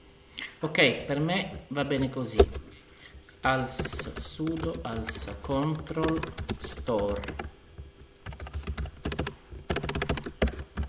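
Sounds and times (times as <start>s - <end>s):
speech: 0.6s - 2.7s, 3.4s - 7.5s
typing on a computer keyboard: 3.7s - 7.5s, 8.2s - 10.8s.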